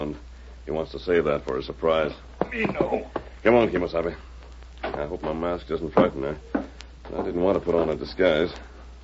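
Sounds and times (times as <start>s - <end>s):
speech: 0.1s - 4.3s, 4.9s - 8.7s
footsteps approaching a door: 2.1s - 8.7s.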